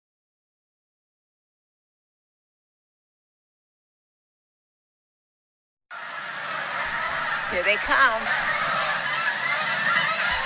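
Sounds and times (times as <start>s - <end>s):
flock of geese honking: 6.0s - 10.4s
speech: 7.5s - 8.5s.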